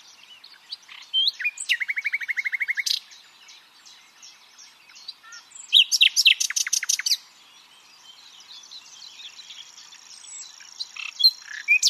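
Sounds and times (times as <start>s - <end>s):
common nightingale Luscinia megarhynchos song with repeated chirps and soft twitters: 0.0s - 11.8s.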